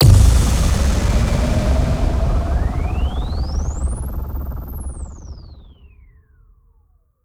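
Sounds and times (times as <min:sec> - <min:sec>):
impact sound effects: 0:00.0 - 0:05.8.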